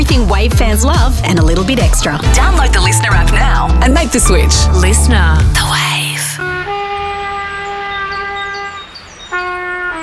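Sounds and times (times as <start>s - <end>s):
speech: 0.1s - 6.0s
trumpet played badly by a child learning: 5.7s - 10.0s.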